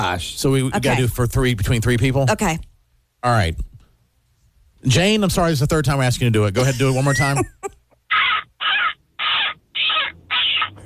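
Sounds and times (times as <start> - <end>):
speech: 0.0 - 3.7, 4.8 - 7.8
person imitating a seagull in a seagull calling contest: 8.1 - 10.8.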